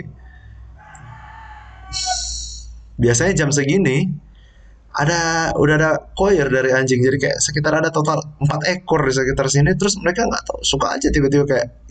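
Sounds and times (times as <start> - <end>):
rooster crowing: 0.2 - 2.4
speech: 3.0 - 4.3, 5.0 - 11.8.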